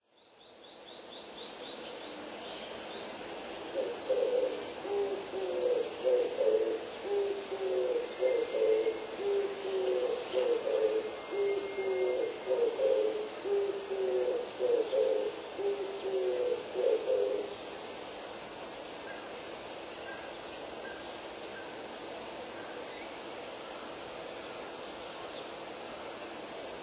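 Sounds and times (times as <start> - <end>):
turtledove cooing: 3.8 - 17.5.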